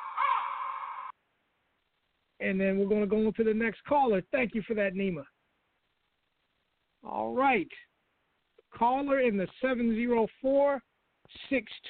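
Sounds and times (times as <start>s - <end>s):
raven call: 0.0s - 1.1s
speech: 2.4s - 5.3s, 7.0s - 7.9s, 8.7s - 11.8s.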